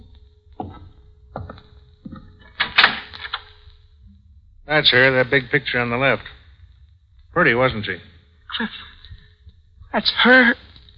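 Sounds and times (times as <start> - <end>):
door to the next room scraping and creaking open: 0.6 - 3.5
speech: 4.7 - 6.4, 7.4 - 8.9, 10.0 - 10.6.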